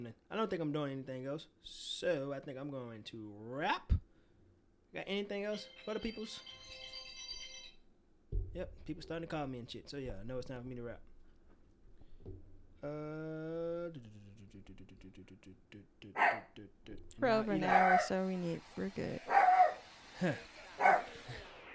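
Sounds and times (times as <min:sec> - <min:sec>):
speech: 0:00.0 - 0:04.1, 0:04.9 - 0:06.9, 0:08.5 - 0:11.1, 0:12.2 - 0:19.5, 0:20.2 - 0:21.5
dog barking: 0:16.2 - 0:16.5, 0:17.6 - 0:18.1, 0:19.3 - 0:19.8, 0:20.8 - 0:21.2.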